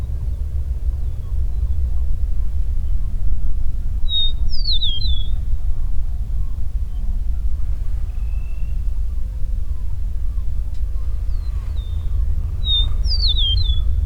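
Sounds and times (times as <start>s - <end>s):
low background rumble: 0.0s - 14.0s
Eastern meadowlark singing: 4.1s - 5.4s, 11.0s - 14.0s.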